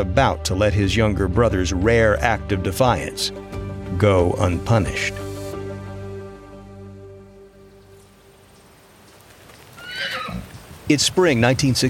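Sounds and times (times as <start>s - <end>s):
speech: 0.0s - 5.2s, 10.9s - 11.8s
quieter outdoor noise in a vineyard on a ranch: 5.3s - 11.8s
faint hoof clopping of ridden horses in a vineyard: 7.8s - 11.8s
horse whinnying in a vineyard on a ranch in Livingston, California: 9.7s - 10.6s.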